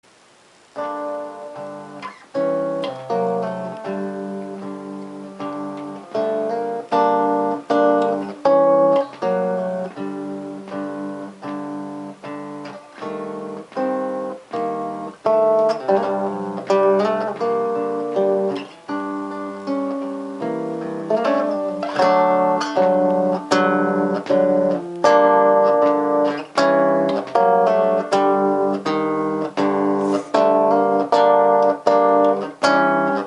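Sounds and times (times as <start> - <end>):
guitar: 0.0 - 33.2.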